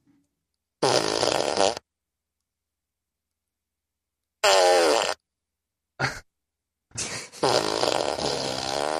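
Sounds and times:
fart sound effects from a novelty machine: 0:00.8 - 0:01.8, 0:04.4 - 0:05.2, 0:07.3 - 0:08.9.

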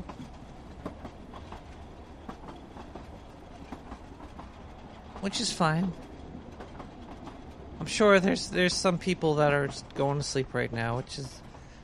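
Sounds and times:
train rolling on rails heard from inside the carriage: 0:00.0 - 0:11.8
speech: 0:05.2 - 0:06.1, 0:07.9 - 0:11.5.

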